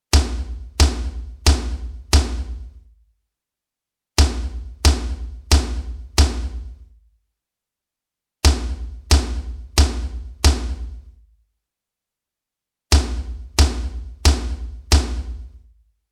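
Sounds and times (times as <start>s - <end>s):
floor tom drum: 0.1s - 2.8s, 4.2s - 6.8s, 8.5s - 11.1s, 13.0s - 15.6s.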